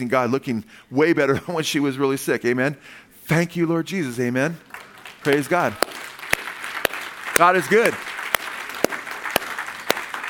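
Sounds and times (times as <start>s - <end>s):
speech: 0.0s - 6.0s, 7.4s - 8.1s
hand claps during a church praise service: 4.7s - 10.2s.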